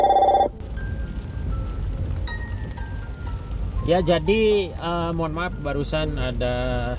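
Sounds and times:
telephone electronic trill ringing: 0:00.0 - 0:00.5
low steady rumble: 0:00.0 - 0:06.9
speech: 0:03.9 - 0:06.9.

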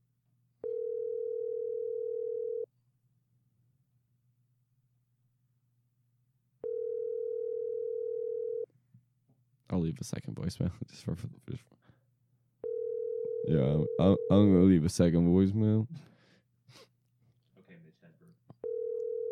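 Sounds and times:
ringback tone of an outgoing telephone call: 0:00.6 - 0:02.7, 0:06.6 - 0:08.6, 0:12.6 - 0:14.3, 0:18.6 - 0:19.3
speech: 0:09.8 - 0:11.8, 0:13.5 - 0:16.1.

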